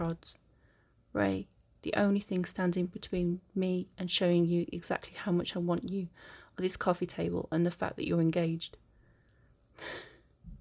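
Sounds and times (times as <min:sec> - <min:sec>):
speech: 0:00.0 - 0:00.4, 0:01.2 - 0:08.8, 0:09.8 - 0:10.1
woman's sharp breathy intake of air: 0:09.0 - 0:10.2
faint low rustling: 0:10.4 - 0:10.5.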